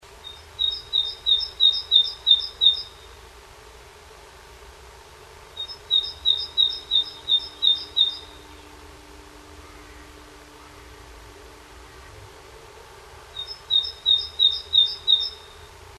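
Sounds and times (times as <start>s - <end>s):
bird calls during nest building at a nest box: 0.2s - 3.2s, 5.6s - 8.8s, 13.4s - 15.8s.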